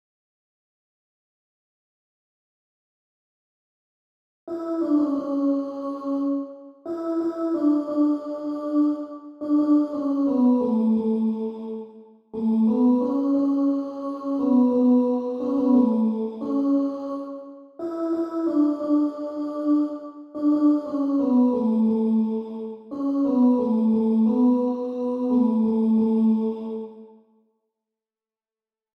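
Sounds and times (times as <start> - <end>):
treble alto voice singing: 4.5 - 27.1.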